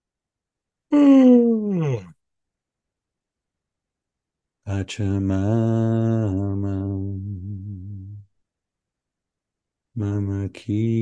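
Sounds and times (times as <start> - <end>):
person yawning: 0.9 - 2.1
speech: 4.7 - 7.8, 10.0 - 10.9.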